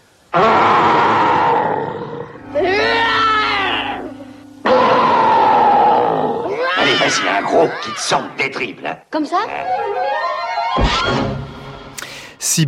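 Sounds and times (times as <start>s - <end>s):
person growling loudly imitating a big bear: 0.3s - 6.7s
speech: 0.4s - 0.8s, 7.1s - 10.2s, 10.8s - 11.4s, 12.4s - 12.6s
steady low hum: 2.0s - 6.6s.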